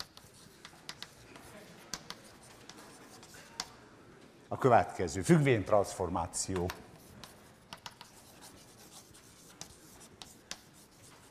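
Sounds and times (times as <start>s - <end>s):
faint writing on a board during a maths lecture: 0.0s - 3.8s, 6.5s - 11.2s
speech: 4.5s - 6.8s.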